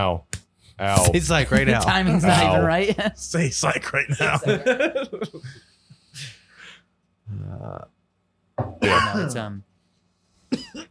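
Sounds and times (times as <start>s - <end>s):
speech: 0.0s - 6.4s, 7.3s - 8.0s, 8.6s - 9.7s
laughter: 1.1s - 5.8s
person coughing: 8.8s - 9.3s, 10.5s - 10.8s
throat clearing: 8.8s - 9.3s.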